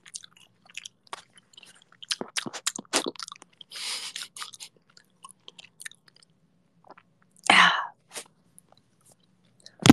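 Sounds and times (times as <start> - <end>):
wet chewing of food with crunchy bites: 0.0 - 7.5.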